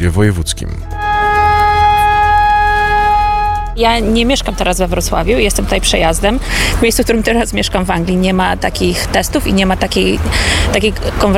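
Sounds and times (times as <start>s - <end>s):
speech: 0.0s - 0.9s, 3.8s - 11.3s
low rumble: 0.0s - 11.3s
civil defense warning siren during an emergency readiness test: 0.8s - 4.8s.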